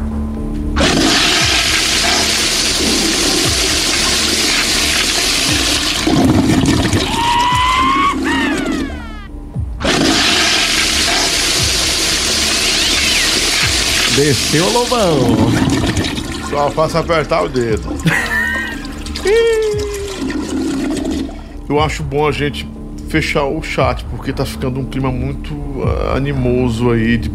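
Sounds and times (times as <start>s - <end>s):
toilet flushing: 0.8s - 9.2s, 9.8s - 21.6s
laughter: 7.0s - 9.3s, 17.0s - 20.4s
speech: 14.2s - 18.3s, 21.7s - 27.3s.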